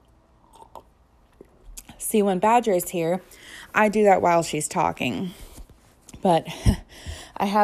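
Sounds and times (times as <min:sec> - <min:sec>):
person swallowing: 0:00.4 - 0:01.0
person sipping wine: 0:00.4 - 0:01.4
soft wet mouth clicks: 0:00.4 - 0:01.9
speech: 0:02.1 - 0:05.4, 0:06.2 - 0:06.8, 0:07.4 - 0:07.6.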